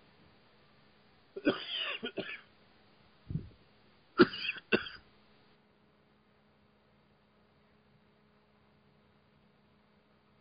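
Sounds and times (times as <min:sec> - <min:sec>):
harsh coughing fits: 0:01.4 - 0:02.4, 0:04.2 - 0:05.0
soft throat clearing: 0:04.2 - 0:05.0.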